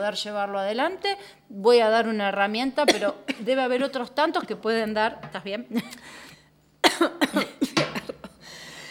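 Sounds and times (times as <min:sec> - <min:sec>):
speech: 0:00.0 - 0:06.3
harsh coughing fit: 0:02.9 - 0:03.6, 0:06.8 - 0:08.4.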